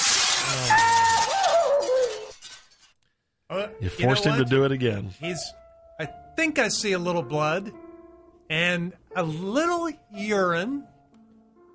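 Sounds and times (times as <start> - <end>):
bright glass shards ringing and tinkling: 0.0 - 3.0
glass shattering as someone jumps through: 0.0 - 3.0
speech: 3.6 - 7.9, 8.5 - 10.9.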